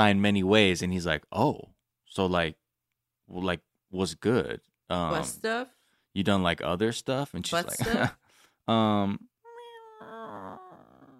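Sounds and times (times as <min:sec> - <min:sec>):
speech: 0:00.0 - 0:02.6, 0:03.3 - 0:09.3
person imitating a faint cat meow: 0:09.5 - 0:11.1.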